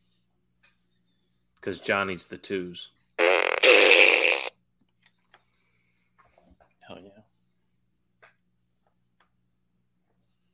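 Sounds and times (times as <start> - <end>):
speech: 1.6 - 3.0
fart gun novelty toy fart noise: 3.2 - 4.6.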